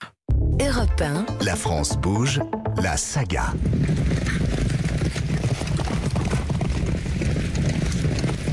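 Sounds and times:
speech: 0.7 - 4.4
several horses' hooves treading the ground: 3.5 - 8.5.

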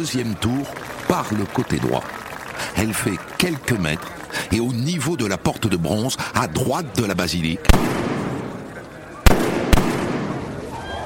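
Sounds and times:
speech: 0.0 - 8.0
crowd murmur at a basilica square: 0.0 - 11.0
gunshots at a crowded basilica square: 7.6 - 10.7.

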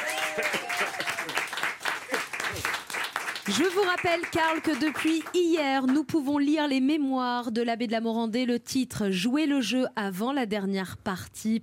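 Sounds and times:
voices cheering: 0.0 - 1.6
crowd applauding: 0.0 - 5.5
speech: 0.4 - 1.0, 3.5 - 11.6.

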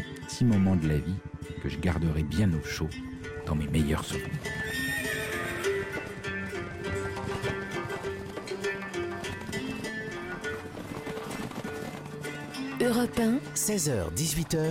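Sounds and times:
speech: 0.3 - 4.6, 12.8 - 14.6
horse hooves clip-clopping as they are led: 3.2 - 14.6
horses whinnying in the steppes of Mongolia: 4.1 - 12.9.

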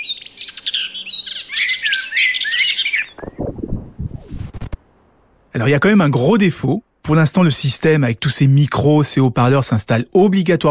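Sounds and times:
small birds chirping and twittering: 0.0 - 4.7
speech: 5.6 - 10.6.

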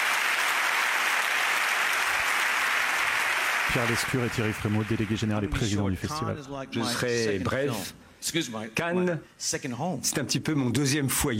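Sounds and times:
large audience applauding in a big festival hall: 0.0 - 5.8
speech: 3.7 - 11.3.

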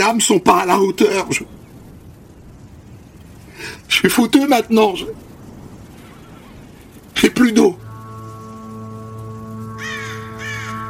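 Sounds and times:
speech: 0.0 - 1.6, 3.9 - 5.2, 7.2 - 7.9
steady low droning hum: 1.2 - 10.8
crow cawing overhead: 9.8 - 10.8.

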